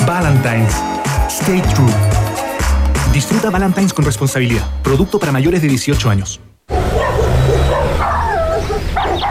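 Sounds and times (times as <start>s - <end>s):
speech: 0.1s - 6.5s
neighbours' dogs barking and yipping: 6.7s - 9.2s.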